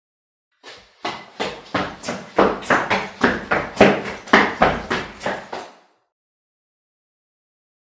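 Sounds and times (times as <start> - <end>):
running footsteps: 0.6 - 5.9.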